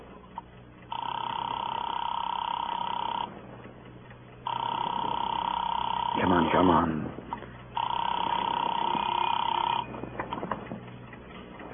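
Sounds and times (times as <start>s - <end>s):
telephone being dialed: 0.9s - 3.3s, 4.5s - 6.4s, 7.8s - 10.7s
long steady electronic tones on a telephone line through a handset: 0.9s - 3.4s, 4.4s - 10.6s
speech: 6.6s - 7.2s.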